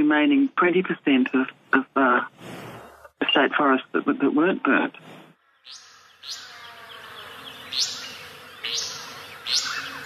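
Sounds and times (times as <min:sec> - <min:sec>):
speech: 0:00.0 - 0:06.4, 0:07.7 - 0:08.0
restless flycatcher song: 0:05.4 - 0:10.0.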